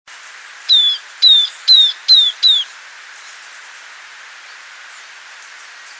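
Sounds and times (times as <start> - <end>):
faint steady background hiss: 0.1 - 5.9
Southern Beardless Tyrannulet Camptostoma obsoletum sclateri song of high whistled notes: 0.7 - 2.7.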